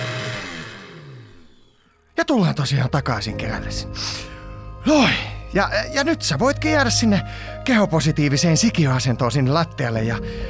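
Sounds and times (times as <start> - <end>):
kitchen blender running: 0.0 - 1.8
speech: 2.2 - 10.4.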